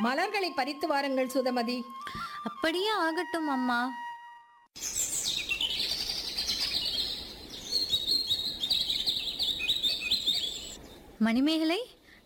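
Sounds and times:
speech: 0.0 - 4.0, 4.8 - 5.0, 11.2 - 12.0
birds chirping in a flower garden: 4.8 - 11.3.

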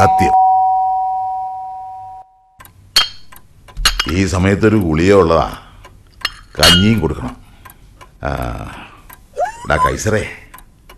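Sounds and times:
speech: 0.0 - 0.4, 4.1 - 5.6, 6.6 - 7.4, 8.2 - 8.8, 9.6 - 10.4
calling bell rung by pressing a switch at the head of a bed: 0.0 - 2.4.

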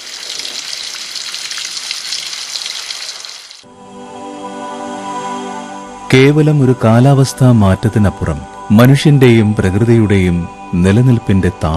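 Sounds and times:
rain falling: 0.0 - 3.6
speech: 6.1 - 11.7.

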